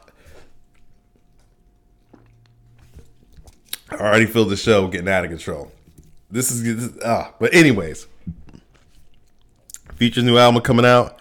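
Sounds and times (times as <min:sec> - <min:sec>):
person sipping a canned cocktail and swallowing: 0:00.0 - 0:04.0, 0:08.1 - 0:10.0
speech: 0:04.0 - 0:08.4, 0:10.0 - 0:11.1.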